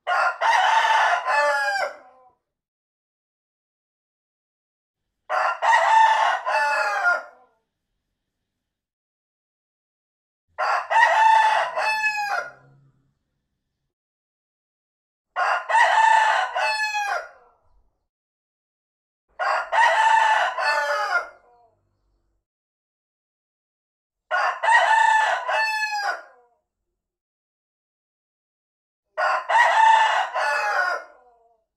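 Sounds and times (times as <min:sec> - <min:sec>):
rooster crowing: 0:00.0 - 0:02.1, 0:05.3 - 0:07.4, 0:10.6 - 0:12.7, 0:15.4 - 0:17.4, 0:19.4 - 0:21.5, 0:24.3 - 0:26.4, 0:29.2 - 0:31.2.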